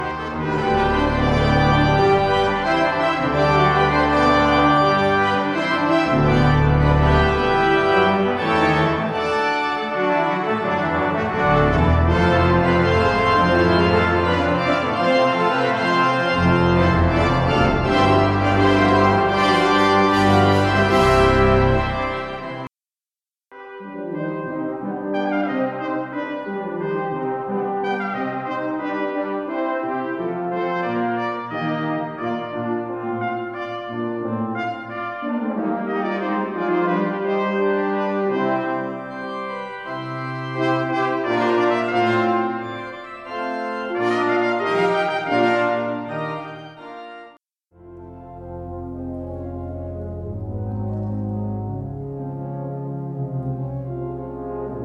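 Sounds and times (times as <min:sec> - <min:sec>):
organ: 0:00.0 - 0:22.7, 0:38.0 - 0:54.8
quintet playing: 0:00.0 - 0:22.7, 0:23.6 - 0:54.8.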